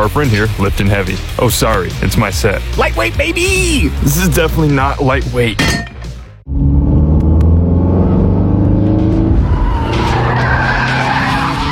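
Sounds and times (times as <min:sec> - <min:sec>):
speech: 0:00.0 - 0:05.9
deep car engine rumble: 0:06.3 - 0:10.4
new car tire screech while skidding: 0:06.5 - 0:11.7.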